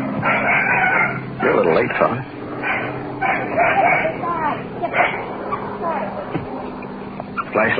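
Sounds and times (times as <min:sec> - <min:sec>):
puppy barking and yipping: 0:00.2 - 0:01.2, 0:02.6 - 0:05.8
speech: 0:01.4 - 0:02.4, 0:07.6 - 0:07.7.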